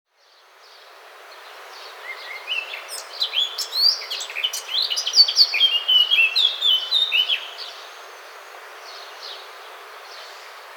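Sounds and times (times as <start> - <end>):
faint background hiss: 0.1 - 10.7
Eurasian blackcap Sylvia atricapilla warbling song with fluted whistles: 2.0 - 7.6.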